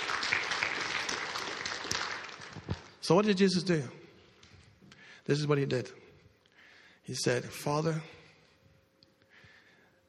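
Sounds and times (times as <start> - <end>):
audience applauding: 0.0 - 3.0
speech: 3.1 - 4.0, 5.3 - 6.0, 7.1 - 8.2.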